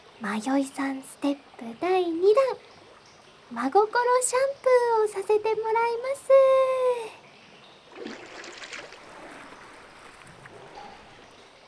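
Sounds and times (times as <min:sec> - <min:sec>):
water dripping and trickling: 0:00.0 - 0:06.6, 0:07.2 - 0:11.6
speech: 0:00.2 - 0:02.8, 0:03.5 - 0:07.2
water sloshing and splashing as someone rises out of a bath: 0:07.9 - 0:11.6.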